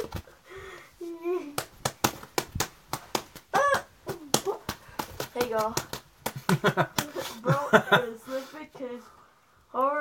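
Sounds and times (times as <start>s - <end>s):
sharp slaps on a toy shark: 1.5s - 7.2s
speech: 5.5s - 5.9s, 6.6s - 9.9s
person chuckling: 6.3s - 8.2s.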